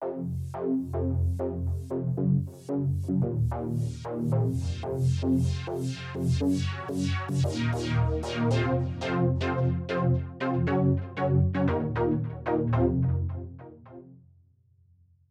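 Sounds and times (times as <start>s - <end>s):
synthesizer bass seventh chord through dual bandpass and lowpass filters: 0.0s - 14.1s.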